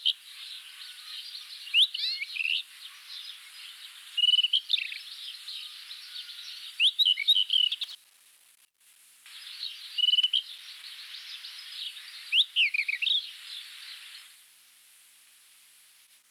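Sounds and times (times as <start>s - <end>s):
rufous-tailed scrub robin Cercotrichas galactotes song: 0.0s - 8.0s, 9.3s - 14.4s
steady background hiss: 0.0s - 16.2s.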